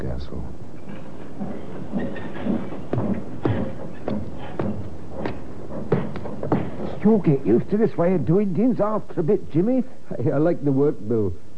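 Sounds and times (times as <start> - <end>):
train rolling slowly through a railroad yard: 1.0 - 9.3
speech: 7.0 - 11.5.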